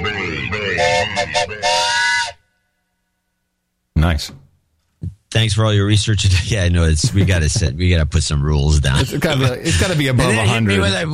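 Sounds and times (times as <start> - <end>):
steam train whistle toots and breathy blast: 0.8 - 2.4
speech: 4.1 - 11.1.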